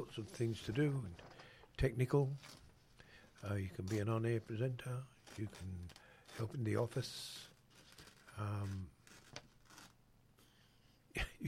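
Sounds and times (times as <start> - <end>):
speech: 0.0 - 2.6, 3.4 - 7.5, 8.4 - 9.0
paper being ripped quietly: 3.4 - 10.0.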